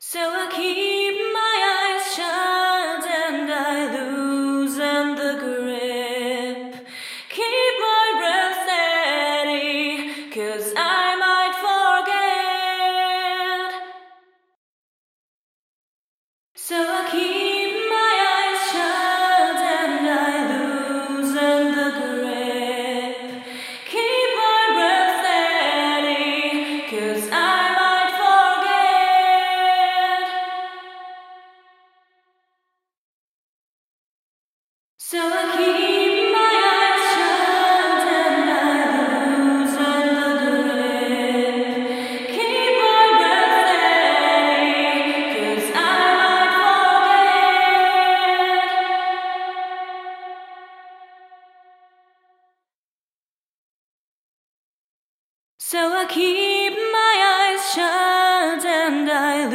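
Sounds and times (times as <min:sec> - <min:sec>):
vocals with reverb: 0:00.0 - 0:14.3, 0:16.6 - 0:32.0, 0:35.0 - 0:52.0, 0:55.6 - 0:59.5.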